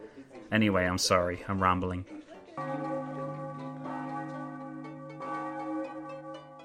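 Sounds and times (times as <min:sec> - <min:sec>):
speech: 0:00.5 - 0:02.9
church bells ringing in the morning: 0:02.6 - 0:06.6.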